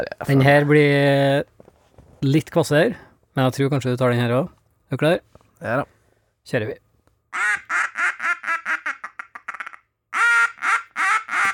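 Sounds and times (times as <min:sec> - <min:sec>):
speech: 0:00.0 - 0:01.5, 0:02.2 - 0:08.0
mallard duck quacking: 0:07.3 - 0:11.5.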